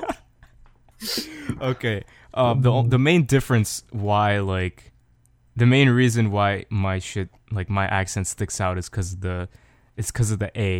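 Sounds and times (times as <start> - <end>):
person coughing: 1.0 - 1.9
speech: 1.0 - 4.9, 5.6 - 10.7.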